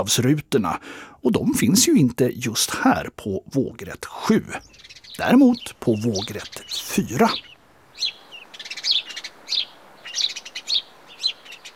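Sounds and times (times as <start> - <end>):
speech: 0.0 - 8.2
house sparrow chirping: 3.3 - 11.7.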